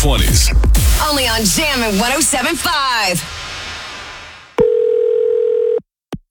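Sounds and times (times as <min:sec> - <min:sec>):
speech: 0:00.0 - 0:03.4
hiss: 0:00.8 - 0:04.6
telephone dial tone while placing a call: 0:04.6 - 0:05.8.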